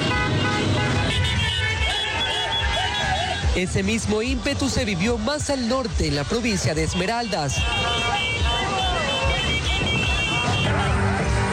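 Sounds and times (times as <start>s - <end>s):
car horns honking in street celebration caravan: 0.0s - 3.6s, 6.6s - 11.5s
loud dense street traffic: 0.0s - 11.5s
crowd voices: 0.9s - 11.5s
speech: 3.6s - 8.4s.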